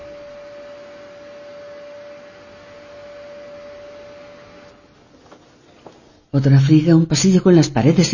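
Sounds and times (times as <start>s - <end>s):
vacuum cleaner running over a training mat: 0.0s - 6.0s
speech: 6.3s - 8.1s.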